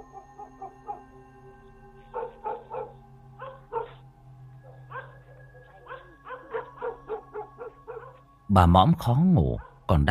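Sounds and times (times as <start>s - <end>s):
two dogs barking loudly at night: 2.1s - 4.0s, 4.6s - 8.3s
speech: 8.5s - 10.0s.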